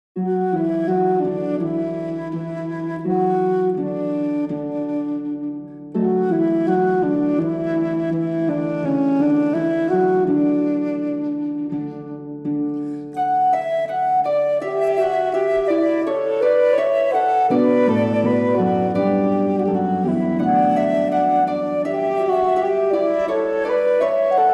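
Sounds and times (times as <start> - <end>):
flute: 0.2 - 24.5
harp: 0.2 - 24.5.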